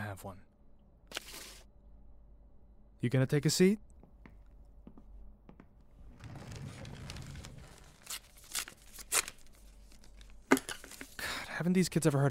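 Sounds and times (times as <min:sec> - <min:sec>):
speech: 0:00.2 - 0:00.5, 0:03.0 - 0:03.9, 0:11.6 - 0:12.2
paper envelope being torn open: 0:01.1 - 0:01.6, 0:06.2 - 0:11.2.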